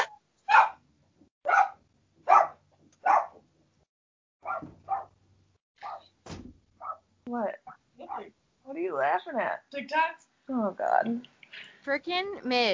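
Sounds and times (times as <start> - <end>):
dog barking excitedly: 0.0 - 0.8, 1.4 - 3.4, 4.4 - 5.2, 5.8 - 6.1, 6.8 - 8.3
speech: 7.3 - 7.6, 8.2 - 12.7.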